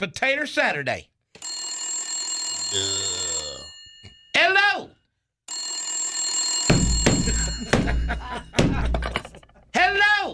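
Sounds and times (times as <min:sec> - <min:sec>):
speech: 0:00.0 - 0:01.1, 0:02.7 - 0:03.1
telephone ringing with bright electronic tone: 0:01.4 - 0:04.5, 0:05.5 - 0:08.5
laughter: 0:07.1 - 0:09.8.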